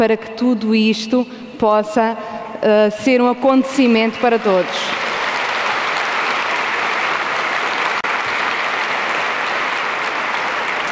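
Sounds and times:
speech: 0.0 - 5.0
audience at a spiritist congress in Lisbon applauding: 4.3 - 10.9.

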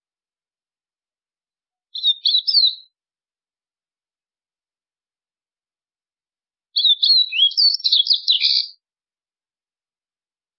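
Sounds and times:
White-throated seedeater song: 1.9 - 3.0, 6.7 - 8.8.

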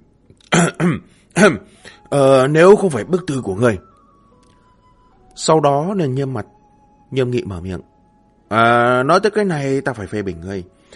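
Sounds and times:
person clearing throat with a dry cough: 0.4 - 1.6
speech: 0.7 - 3.9, 5.4 - 7.9, 8.5 - 10.9.

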